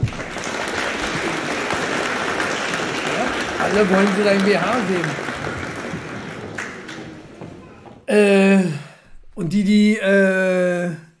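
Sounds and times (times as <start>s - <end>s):
crowd applauding: 0.0s - 8.0s
speech: 3.7s - 5.3s, 8.1s - 8.8s, 9.4s - 11.0s.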